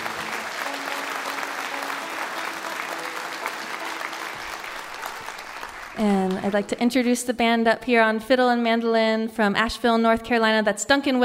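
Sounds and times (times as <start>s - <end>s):
sustained applause from a sizable audience: 0.0s - 6.8s
speech: 6.0s - 11.2s.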